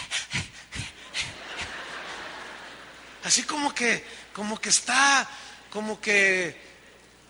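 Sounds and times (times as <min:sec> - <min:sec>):
person imitating a small pet dog's contented snuffling pants: 0:00.0 - 0:01.7
laughter: 0:00.9 - 0:03.5
speech: 0:03.2 - 0:06.6.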